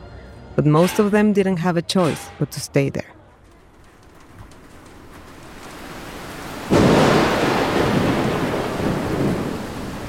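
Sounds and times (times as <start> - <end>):
speech: 0.6 - 3.2
loud crack of thunder: 3.5 - 10.0
heavy pouring rain: 3.6 - 10.0.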